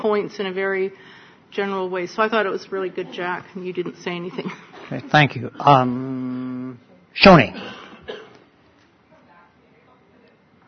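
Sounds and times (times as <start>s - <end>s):
speech: 0.0s - 7.8s
hiss: 0.0s - 10.6s
person coughing: 7.6s - 8.4s.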